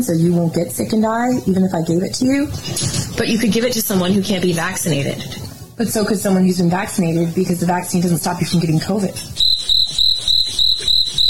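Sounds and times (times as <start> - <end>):
speech: 0.0 - 9.4
crickets chirping: 9.3 - 11.2.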